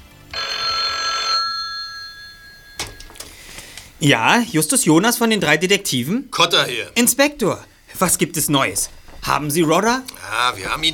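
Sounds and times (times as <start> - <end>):
telephone ringing: 0.3 - 3.2
speech: 4.0 - 10.9.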